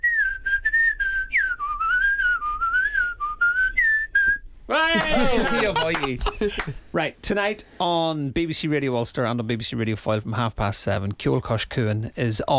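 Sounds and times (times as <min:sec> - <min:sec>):
person whistling a wavering clear melody: 0:00.0 - 0:04.5
laughter: 0:04.7 - 0:06.9
speech: 0:04.7 - 0:12.5.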